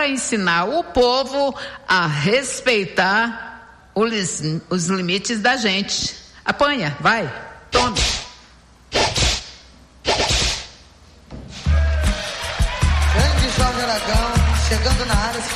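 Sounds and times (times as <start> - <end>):
speech: 0.0 - 8.2, 15.2 - 15.5
whip cracks: 7.8 - 10.8
upbeat music with heavy bass: 11.7 - 15.5.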